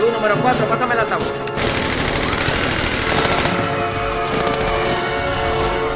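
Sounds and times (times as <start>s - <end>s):
speech: 0.2s - 1.8s
rapid gunfire bursts during a hostage standoff: 1.6s - 5.8s.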